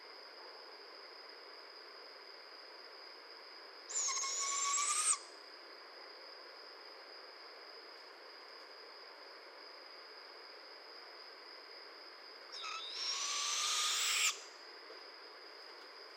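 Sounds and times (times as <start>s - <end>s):
barred owl raspy hissing screeches: 3.9s - 5.3s, 12.6s - 14.5s.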